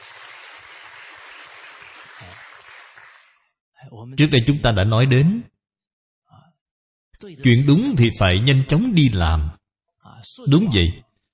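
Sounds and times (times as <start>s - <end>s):
crowd clapping: 0.0s - 3.5s
speech: 3.8s - 5.5s, 7.2s - 11.0s.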